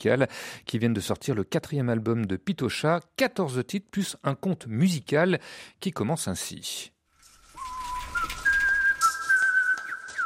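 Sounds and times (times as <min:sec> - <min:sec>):
speech: 0:00.0 - 0:07.0
person whistling a light melody: 0:07.6 - 0:10.2.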